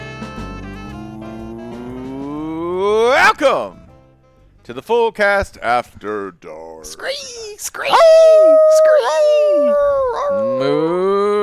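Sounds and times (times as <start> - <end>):
person imitating a cow mooing: 0.5 - 3.3, 10.2 - 11.4
speech: 2.8 - 3.8, 4.7 - 11.4.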